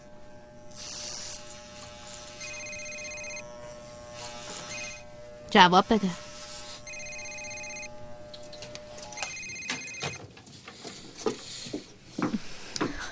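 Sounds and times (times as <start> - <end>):
telephone ringing with a bright electronic tone: 2.4 - 3.5, 4.7 - 5.0, 6.8 - 8.0, 9.1 - 10.2
speech: 5.5 - 6.2.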